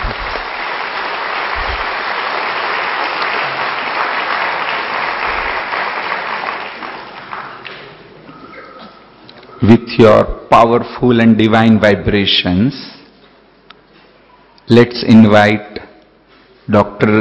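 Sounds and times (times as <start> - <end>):
audience applause at a conference opening: 0.0 - 8.2
speech: 9.9 - 13.0, 14.7 - 15.9, 16.7 - 17.1.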